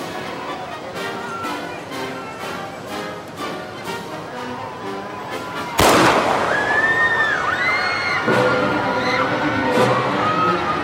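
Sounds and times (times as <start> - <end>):
crowd noise and chatter as a presidential motorcade passes: 0.0 - 10.8
gunshot at Dealey Plaza: 5.8 - 7.4.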